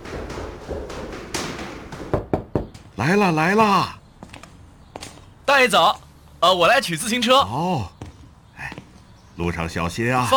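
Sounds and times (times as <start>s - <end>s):
sharp knocks on a door: 0.0s - 2.9s
speech: 3.0s - 4.0s, 5.5s - 8.0s, 9.4s - 10.3s.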